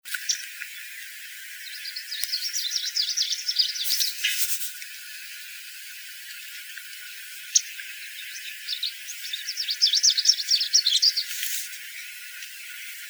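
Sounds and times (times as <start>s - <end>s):
Vermivora Parula Dendroica warbler: 0.1s - 4.8s, 5.5s - 13.0s.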